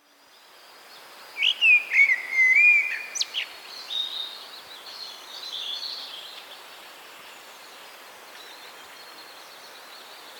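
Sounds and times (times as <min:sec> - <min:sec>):
common blackbird singing: 0:01.4 - 0:03.5.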